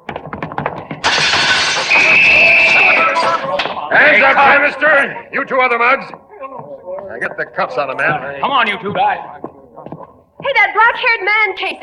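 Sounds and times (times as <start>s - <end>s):
window glass smashing and shattering: 1.0s - 3.7s
speech: 3.9s - 6.3s, 7.1s - 11.8s.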